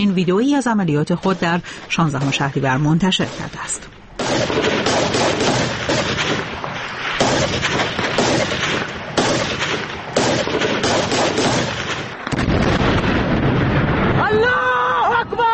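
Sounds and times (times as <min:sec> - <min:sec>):
speech: 0:00.0 - 0:06.5
dense bursts of gunfire in an attack on a border post: 0:01.2 - 0:13.4
blasts as militants blow up a border post and tank: 0:01.2 - 0:14.7
fighters shouting excitedly: 0:14.2 - 0:15.5.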